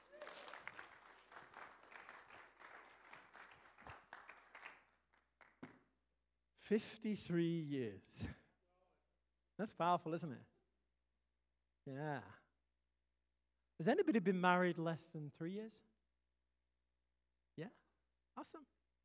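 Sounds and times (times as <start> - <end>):
room full of people applauding: 0.0 - 5.7
speech: 6.7 - 8.4, 9.6 - 10.5, 11.9 - 12.4, 13.8 - 15.9, 17.6 - 17.8, 18.4 - 18.8.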